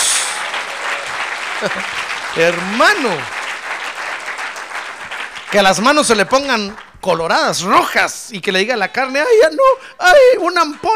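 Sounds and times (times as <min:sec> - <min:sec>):
audience applauding: 0:00.0 - 0:07.9
laughter: 0:00.8 - 0:02.8
speech: 0:01.6 - 0:03.4, 0:05.5 - 0:10.9.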